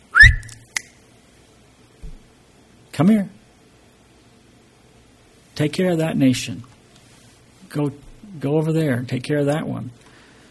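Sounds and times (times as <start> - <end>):
person whistling: 0.0 - 0.6
sharp click: 0.2 - 1.0
speech: 3.0 - 3.4, 5.6 - 6.7, 7.7 - 10.0.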